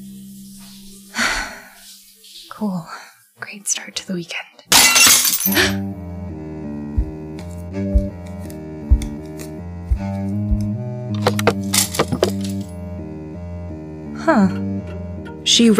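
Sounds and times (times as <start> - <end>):
speech: 2.6 - 6.0, 14.3 - 14.6, 15.6 - 15.7
bright clinking breaking-glass bursts: 4.7 - 5.8
picture frame glass shattering: 4.7 - 5.8, 11.4 - 12.6
droning music bed: 5.4 - 15.7
soft low thuds: 6.9 - 7.3, 9.8 - 12.4.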